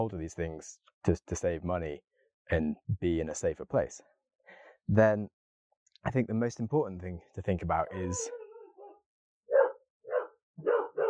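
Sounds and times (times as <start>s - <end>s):
speech: 0.0s - 5.4s, 6.0s - 8.4s
dog barking: 8.0s - 11.0s.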